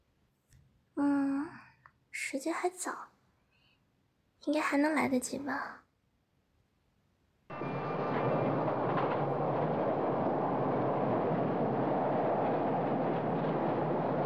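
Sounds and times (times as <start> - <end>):
speech: 2.3 - 3.2, 4.4 - 5.8
rumble of a crowded moving tram's interior: 7.5 - 14.2.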